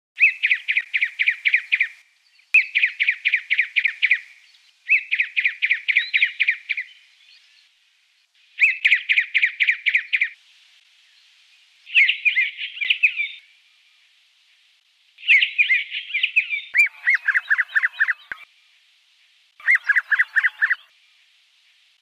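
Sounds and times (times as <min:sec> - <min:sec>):
hooded robin calling: 0:00.2 - 0:02.0, 0:02.6 - 0:07.5, 0:08.6 - 0:10.4, 0:11.9 - 0:13.5, 0:15.2 - 0:18.5, 0:19.6 - 0:20.9.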